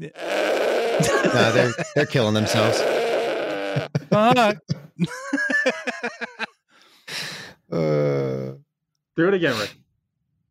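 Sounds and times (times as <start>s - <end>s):
speech: 0.0s - 3.1s, 3.7s - 6.4s, 9.2s - 9.8s
goat bleating: 0.1s - 4.5s
laughter: 1.0s - 2.8s, 3.6s - 6.5s.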